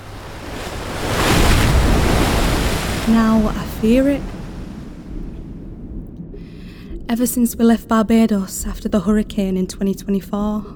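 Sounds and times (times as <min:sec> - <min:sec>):
wind gusts rushing across the microphone: 0:00.0 - 0:08.5
ocean surf waves breaking: 0:00.0 - 0:10.7
speech: 0:03.1 - 0:04.4, 0:07.1 - 0:10.7.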